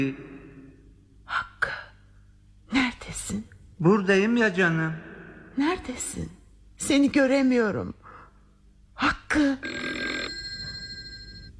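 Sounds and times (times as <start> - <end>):
speech: 0.0 - 0.3, 3.1 - 8.0, 9.0 - 9.8
metallic telephone bell ringing: 9.6 - 11.5.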